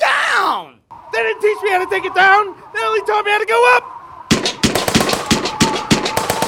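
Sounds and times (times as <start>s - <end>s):
speech: 1.4s - 4.0s
rapid gunfire aimed at a person in Detroit: 4.3s - 6.4s.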